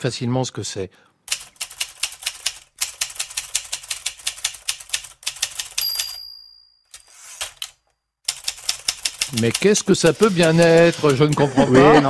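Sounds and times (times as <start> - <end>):
speech: 0.0 - 1.1, 9.3 - 12.0
Olivetti manual typewriter typing: 1.3 - 6.2, 6.9 - 11.6
Olivetti typewriter bell ding: 5.8 - 7.2
laughter: 10.7 - 12.0.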